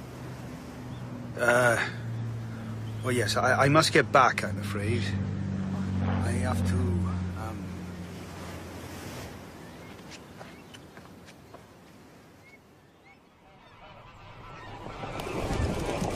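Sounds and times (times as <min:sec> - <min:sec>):
surf: 0:00.0 - 0:16.1
wind: 0:00.0 - 0:16.1
speech: 0:01.4 - 0:02.0, 0:03.0 - 0:05.4, 0:06.3 - 0:07.1
geese honking as they fly away from a sea wall: 0:13.0 - 0:16.1.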